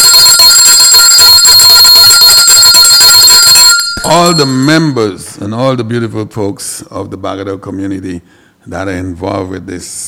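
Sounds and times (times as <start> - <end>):
hand bell ringing: 0.2 - 5.3
speech: 4.1 - 9.9.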